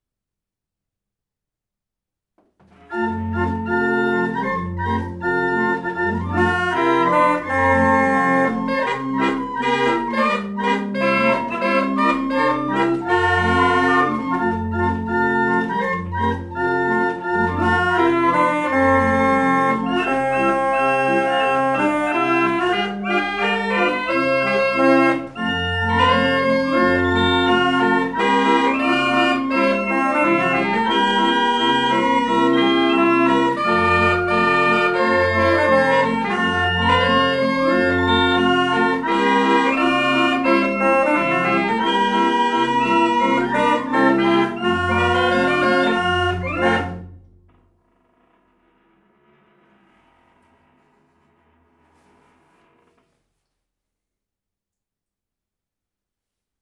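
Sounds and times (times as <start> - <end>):
barrel organ melody: 2.7 - 47.3.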